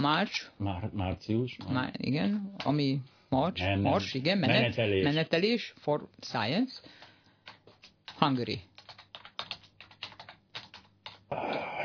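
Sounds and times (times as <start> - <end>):
speech: 0.0 - 7.0, 8.2 - 8.7
two-finger key presses on a computer keyboard: 7.0 - 11.8.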